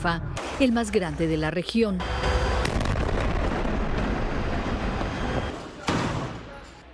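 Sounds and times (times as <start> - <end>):
speech: 0.0 - 2.3
powerful explosions from bombardment: 2.4 - 6.5.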